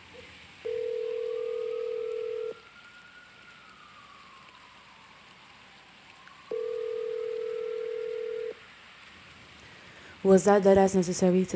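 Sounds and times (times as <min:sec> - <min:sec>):
faint hissy background: 0:00.0 - 0:11.5
outgoing phone call ringback tones: 0:00.7 - 0:02.6, 0:06.5 - 0:08.6
speech: 0:10.2 - 0:11.5.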